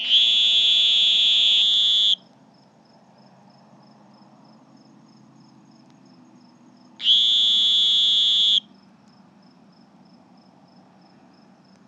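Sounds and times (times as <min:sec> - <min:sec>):
two Sonoran green toads calling with a piercing steady buzz: 0:00.0 - 0:02.3, 0:06.2 - 0:08.9.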